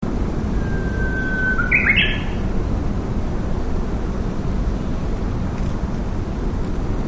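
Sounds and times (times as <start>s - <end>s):
constant low rumbling noise: 0.0s - 7.0s
bird whistle and harsh chirping: 0.5s - 2.4s.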